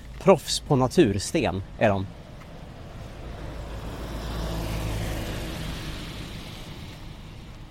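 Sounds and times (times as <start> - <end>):
car engine and tire rumble: 0.0 - 7.6
speech: 0.2 - 2.2
car driving past on a city street: 2.5 - 7.6.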